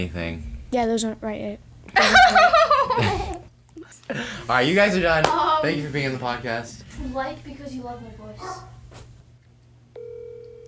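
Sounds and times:
speech: 0.0s - 3.3s, 4.0s - 9.0s
low hum: 0.0s - 10.6s
laughter: 1.9s - 4.5s
electronic telephone tone: 10.0s - 10.6s.

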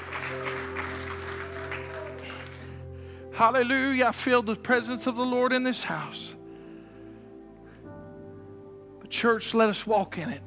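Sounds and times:
church audience applauding: 0.0s - 2.9s
speech: 3.4s - 6.4s, 9.2s - 10.4s.

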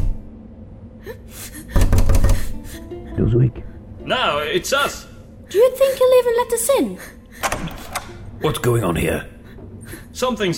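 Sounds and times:
knocking on a round wooden door at the end of a tunnel: 1.7s - 2.6s
speech: 3.2s - 7.2s, 8.4s - 9.3s, 10.2s - 10.5s.

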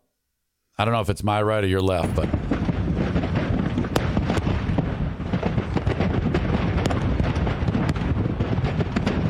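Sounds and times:
speech: 0.8s - 3.2s
missile flying and exploding: 2.2s - 9.2s.

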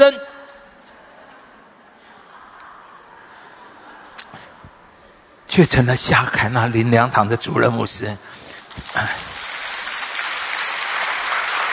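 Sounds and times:
speech: 0.0s - 0.3s, 5.6s - 9.2s
audience applause: 8.7s - 11.7s.

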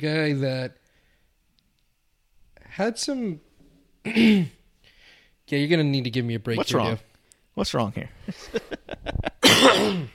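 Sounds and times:
speech: 0.0s - 0.8s, 2.7s - 4.6s, 5.5s - 8.6s
person clearing throat: 4.0s - 4.6s, 9.4s - 10.1s.

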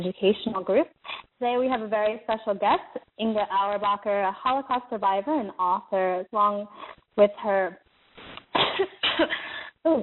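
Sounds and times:
speech: 0.0s - 7.8s, 8.8s - 10.0s
person coughing: 8.5s - 9.6s.

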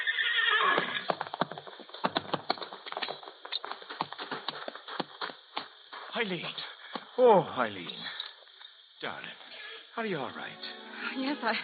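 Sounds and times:
horse whinnying: 0.0s - 1.1s
horse hooves clip-clopping: 0.6s - 7.1s
speech: 6.2s - 8.2s, 9.0s - 9.4s, 10.0s - 11.6s.

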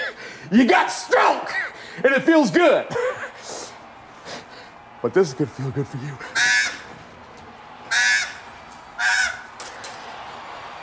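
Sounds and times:
speech: 0.5s - 3.0s, 5.0s - 6.4s
crow cawing: 6.2s - 7.0s, 7.9s - 9.6s.

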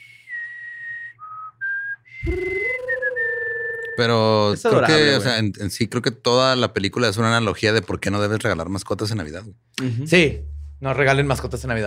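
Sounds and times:
person whistling a short melody: 0.0s - 4.1s
speech: 2.2s - 2.6s, 4.0s - 11.8s
fuller low sustained sound: 10.2s - 11.8s.

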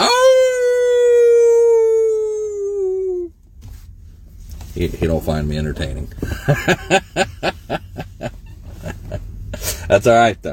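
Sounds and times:
person howling like a wolf: 0.0s - 3.3s
speech: 4.8s - 7.8s, 9.9s - 10.5s
laughter: 6.2s - 9.2s.

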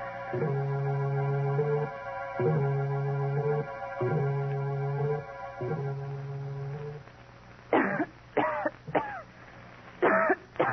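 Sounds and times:
steady droning pulsing hum: 0.0s - 10.7s
woman coughing: 7.8s - 9.2s, 10.0s - 10.7s.

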